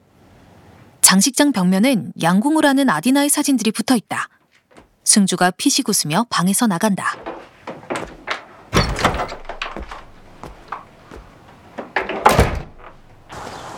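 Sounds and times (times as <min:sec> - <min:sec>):
speech: 0:01.1 - 0:04.4, 0:05.0 - 0:07.3
front gate door being opened as two people leave a house: 0:07.2 - 0:13.7.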